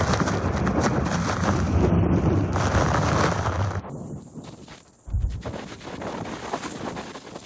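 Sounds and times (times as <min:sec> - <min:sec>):
strong storm wind gusting on the microphone: 0:00.0 - 0:07.4.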